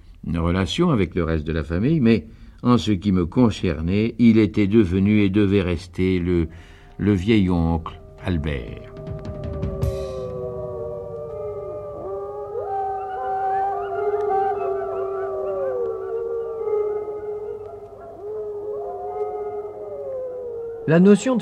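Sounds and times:
speech: 0:00.2 - 0:09.1, 0:20.9 - 0:21.4
several wolves howling in chorus: 0:07.0 - 0:21.4.

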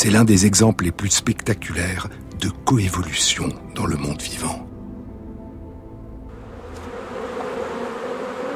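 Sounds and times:
speech: 0:00.0 - 0:04.7
bees buzzing: 0:06.3 - 0:08.5.

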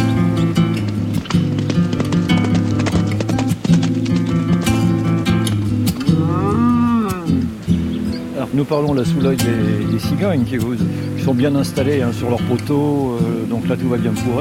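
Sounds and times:
bulls lowing and bellowing on open grazing range in the Camargue, France: 0:00.0 - 0:08.2
hooves of bulls and horses clip-clopping on open grazing range in the Camargue, France: 0:00.0 - 0:14.4
speech: 0:08.6 - 0:14.4.

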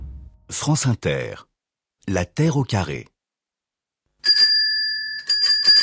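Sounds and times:
speech: 0:00.6 - 0:01.5, 0:02.0 - 0:03.1
small bicycle bell ringing: 0:04.2 - 0:05.8.

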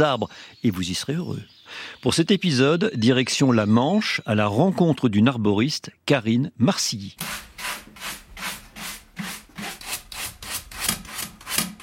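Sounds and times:
speech: 0:00.0 - 0:07.5
brush scraping debris from saw teeth: 0:07.2 - 0:11.8.

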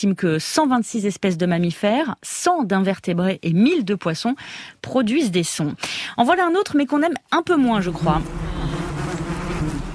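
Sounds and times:
speech: 0:00.0 - 0:08.6
honeybees humming at a hive: 0:07.7 - 0:09.9
invasive Asian hornet Vespa velutina buzzing at a hive: 0:07.7 - 0:09.9.

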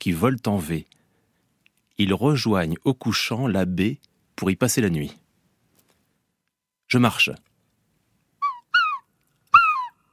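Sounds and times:
speech: 0:00.0 - 0:01.0, 0:02.0 - 0:05.2, 0:06.9 - 0:07.5
small flock of birds crying as they fly overhead: 0:08.4 - 0:10.1.

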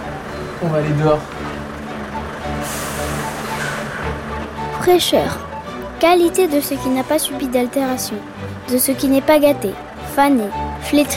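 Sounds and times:
fish delivery truck engine rumbling: 0:00.0 - 0:11.1
speech: 0:00.6 - 0:01.4, 0:04.8 - 0:11.1
fish delivery truck air brakes hissing: 0:02.5 - 0:04.4.

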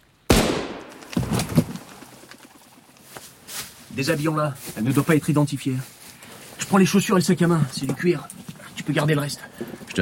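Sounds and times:
gunshot in a wood during hunting season: 0:00.3 - 0:01.7
speech: 0:04.0 - 0:06.0, 0:06.6 - 0:10.0.

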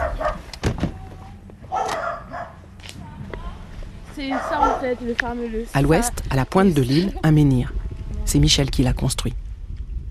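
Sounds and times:
several dogs barking in short sharp bursts: 0:00.0 - 0:00.5, 0:01.6 - 0:02.7, 0:04.2 - 0:05.2
faint outdoor noise: 0:00.0 - 0:10.1
speech: 0:04.2 - 0:09.4.

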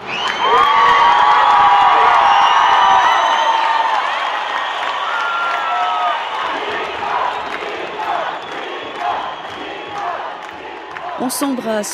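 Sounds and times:
scattered whoops and calls from crowd: 0:00.0 - 0:06.4
huge crowd roaring and cheering outdoors in a square: 0:00.0 - 0:11.9
speech: 0:11.3 - 0:11.9.

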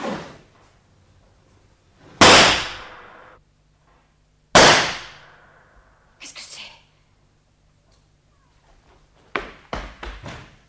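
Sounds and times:
loud sharp gunshots: 0:02.2 - 0:03.3, 0:04.6 - 0:05.3
booming echo of gunshots: 0:02.2 - 0:03.4, 0:04.6 - 0:05.5.

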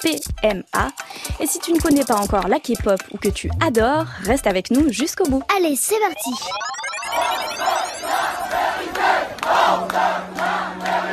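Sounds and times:
speech: 0:00.0 - 0:08.2
protesters shouting rhythmic chants in a crowd in Rouen: 0:07.6 - 0:11.1.

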